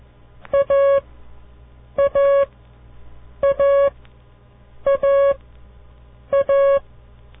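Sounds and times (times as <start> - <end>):
low steady hum: 0.0 - 7.3
buzzy mid-pitched signal beeps coding a letter: 2.0 - 2.5, 3.4 - 4.0, 4.9 - 5.4, 6.3 - 6.8.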